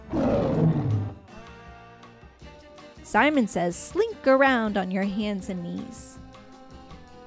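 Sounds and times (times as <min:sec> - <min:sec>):
lion roaring: 0:00.0 - 0:01.3
speech: 0:03.1 - 0:06.2.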